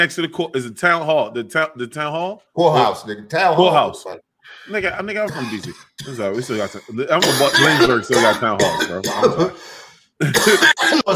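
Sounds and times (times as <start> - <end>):
speech: 0.0 - 11.1
loud raspy cough into the microphone: 5.3 - 6.3, 7.2 - 9.6, 10.2 - 11.1.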